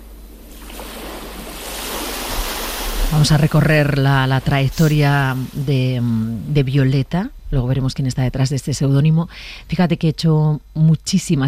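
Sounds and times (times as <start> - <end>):
sea waves breaking on rocks: 0.4 - 6.1
speech: 3.1 - 11.4.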